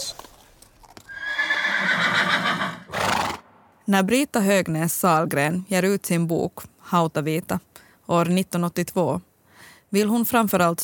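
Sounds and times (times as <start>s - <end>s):
horse hoof clatter: 0.0s - 1.6s
horse neighing: 1.1s - 3.5s
speech: 3.9s - 9.3s, 9.9s - 10.8s.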